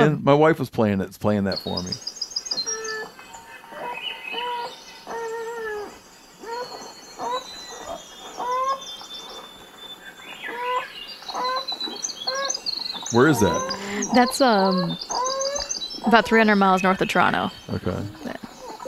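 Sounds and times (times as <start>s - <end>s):
speech: 0.0s - 2.2s, 13.1s - 15.1s, 16.0s - 18.2s
North American beaver kits crying with nasal whines inside a lodge: 1.6s - 18.8s
Swainson's thrush singing softly: 1.6s - 18.8s.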